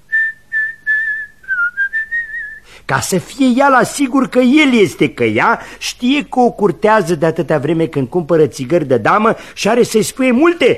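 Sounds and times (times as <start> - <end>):
person whistling a tune as a signal: 0.1 - 2.6
speech: 2.9 - 10.7.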